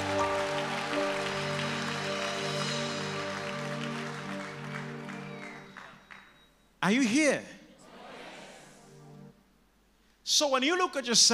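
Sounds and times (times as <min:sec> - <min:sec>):
audience applause: 0:00.0 - 0:06.4
speech: 0:06.8 - 0:07.6, 0:10.4 - 0:11.3.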